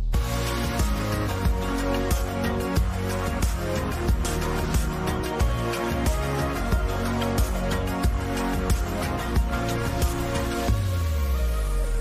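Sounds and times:
short loud instrumental music interlude with driving beat: 0.1s - 11.9s.

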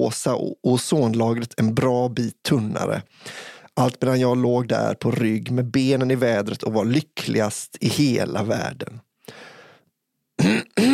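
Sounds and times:
speech: 0.0s - 9.5s, 10.4s - 10.9s
loud harsh throat clearing: 10.4s - 10.9s.

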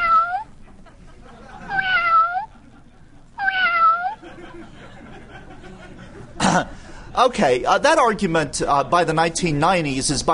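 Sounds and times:
cat meowing: 0.0s - 0.6s, 1.7s - 2.5s, 3.4s - 4.2s
faint hum: 0.0s - 10.3s
laughter: 0.6s - 1.8s, 2.5s - 3.2s, 4.2s - 6.8s
speech: 7.2s - 10.3s.

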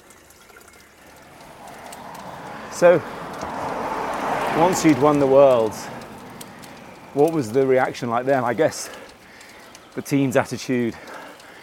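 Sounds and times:
cold water pouring into a glass: 0.0s - 1.4s
speech: 2.8s - 3.2s, 4.6s - 6.0s, 7.1s - 9.0s, 10.0s - 11.1s.

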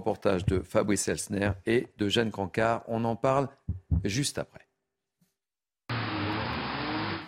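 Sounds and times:
speech: 0.0s - 4.6s
dozens of cars driven at full speed and skidding at urban rodeo in Île-de-France: 5.9s - 7.2s.

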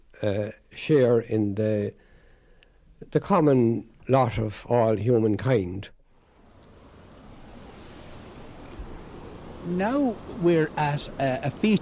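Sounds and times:
speech: 0.2s - 2.0s, 3.0s - 6.0s, 9.6s - 11.8s
water tumbling down a stream's falls: 6.4s - 11.8s.

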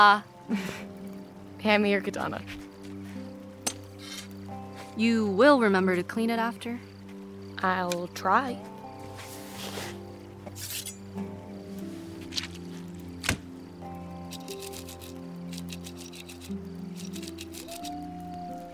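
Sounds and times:
speech: 0.0s - 0.9s, 1.6s - 2.7s, 5.0s - 6.9s, 7.6s - 8.7s
coyotes howling: 16.3s - 18.7s.

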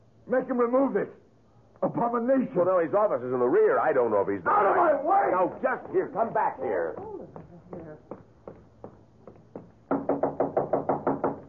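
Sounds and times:
speech: 0.3s - 1.2s, 1.8s - 7.2s
faint murmur: 4.4s - 8.4s
knocking on a door: 5.8s - 11.4s.

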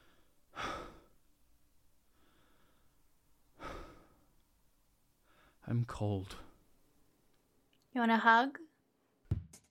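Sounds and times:
heavy breathing with long rough exhales: 0.0s - 1.2s, 2.1s - 4.4s, 5.2s - 5.6s
speech: 5.7s - 6.5s, 8.0s - 8.6s.

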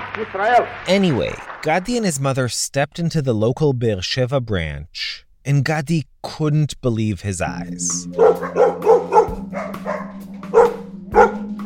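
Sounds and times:
speech: 0.2s - 8.8s
many dogs barking and yelping at an animal welfare society branch in Israel: 8.0s - 11.6s.

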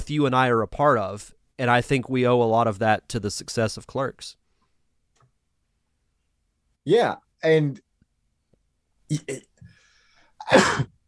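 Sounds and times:
speech: 0.1s - 4.4s, 6.8s - 7.8s, 9.1s - 9.5s, 10.5s - 10.9s
person sneezing: 10.4s - 11.0s.

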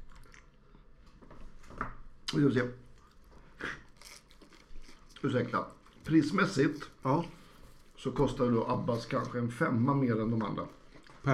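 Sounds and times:
chewing and smacking while eating bread with sour cream and onion: 0.0s - 1.2s, 2.9s - 6.2s, 10.3s - 11.3s
speech: 2.3s - 2.8s, 5.2s - 7.4s, 8.0s - 11.3s.

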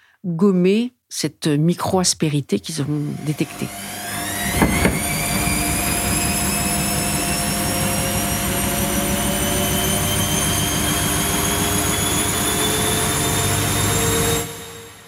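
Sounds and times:
speech: 0.2s - 4.0s
washing machine on spin cycle: 3.1s - 15.0s.

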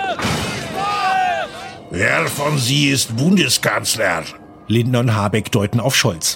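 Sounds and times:
loud sharp gunshot blast: 0.2s - 0.8s
speech: 1.9s - 6.3s.

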